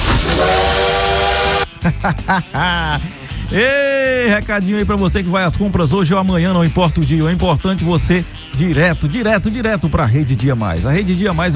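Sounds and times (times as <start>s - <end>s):
hissing rail noise: 0.0s - 1.7s
train whistle blowing: 0.0s - 1.7s
laughter: 1.7s - 3.7s
speech: 1.8s - 11.5s.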